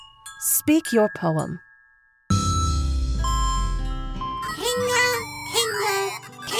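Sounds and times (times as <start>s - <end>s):
speech: 0.4s - 1.7s
chimes ringing: 2.0s - 6.4s
deep resonant hum: 2.3s - 4.6s.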